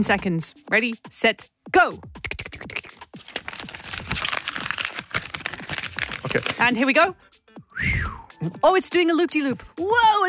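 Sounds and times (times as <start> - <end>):
speech: 0.0 - 2.7, 6.3 - 7.2, 7.8 - 10.2
paper being folded into a paper plane: 2.7 - 6.8.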